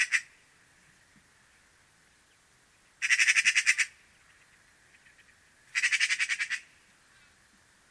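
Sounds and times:
Eurasian magpie chattering: 0.0s - 0.3s, 3.0s - 4.0s, 4.9s - 6.7s.

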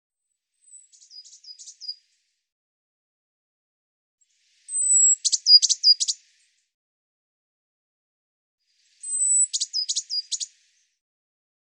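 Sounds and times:
Eurasian blue tit calls with thin high whistle and buzzy notes: 4.8s - 6.2s, 9.0s - 10.5s.

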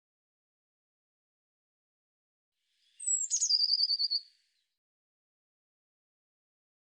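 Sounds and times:
Eurasian blue tit calling: 3.0s - 4.3s.

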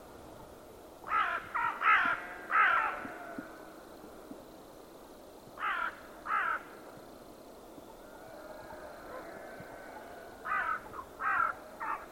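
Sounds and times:
steady background hiss: 0.0s - 12.1s
bird giving harsh hoarse caws: 1.1s - 3.6s, 5.6s - 6.7s, 8.2s - 12.1s.

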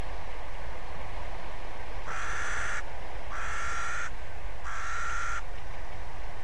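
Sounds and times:
constant hum: 0.0s - 6.4s
bird cawing: 2.0s - 5.5s.

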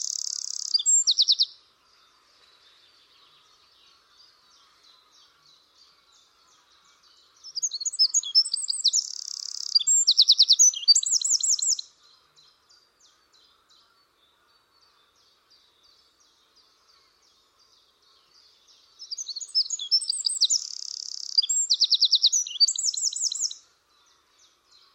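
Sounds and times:
bird giving high chirps, buzzes and quick trills: 0.0s - 1.5s, 7.5s - 11.9s, 19.1s - 23.6s.

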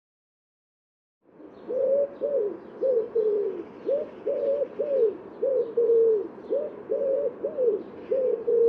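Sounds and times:
bird cooing notes: 1.4s - 8.6s.

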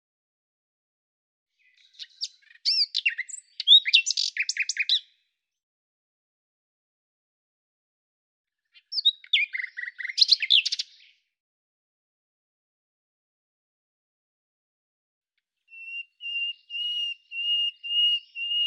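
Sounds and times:
common nightingale singing: 1.6s - 5.2s, 8.7s - 11.3s, 15.7s - 18.6s.

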